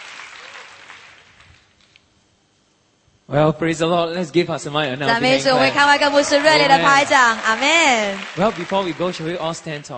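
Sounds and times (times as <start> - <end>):
church audience applauding: 0.0 - 1.8, 5.1 - 9.9
speech: 3.3 - 9.9.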